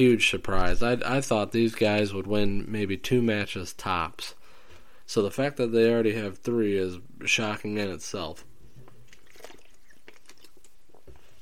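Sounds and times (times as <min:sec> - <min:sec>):
speech: 0:00.0 - 0:04.4, 0:05.1 - 0:08.5
person drinking water with wet clicks and swallows: 0:08.7 - 0:11.3.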